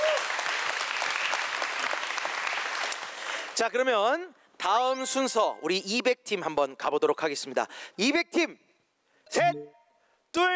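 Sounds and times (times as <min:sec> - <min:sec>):
sizable audience applauding: 0:00.0 - 0:03.6
speech: 0:03.6 - 0:08.7, 0:09.3 - 0:10.5.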